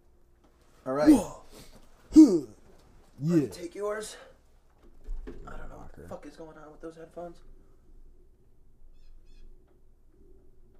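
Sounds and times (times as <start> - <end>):
speech: 0.9 - 1.4, 3.2 - 4.3, 6.0 - 7.5
short high bird calls outside: 8.9 - 9.6.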